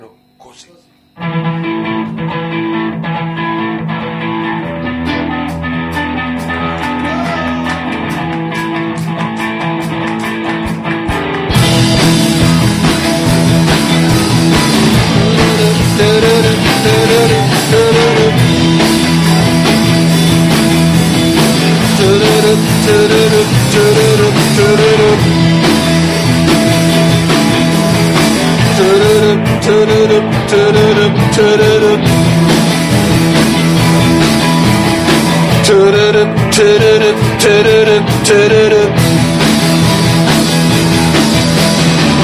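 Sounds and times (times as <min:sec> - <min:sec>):
speech: 0:00.0 - 0:01.3, 0:36.6 - 0:39.0
gritty distorted instruments: 0:00.0 - 0:42.2
live band improvising a Chinese-style song: 0:00.6 - 0:42.2
driving drums: 0:01.2 - 0:42.2.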